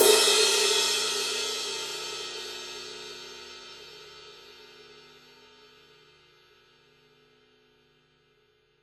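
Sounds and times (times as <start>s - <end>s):
22-inch ride cymbal struck on the edge: 0.0s - 3.5s.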